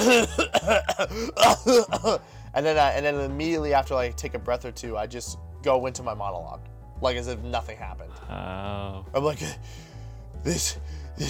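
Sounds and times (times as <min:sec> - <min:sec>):
person fake coughing after surfacing from a pool: 0:00.0 - 0:02.3
speech: 0:00.0 - 0:11.2.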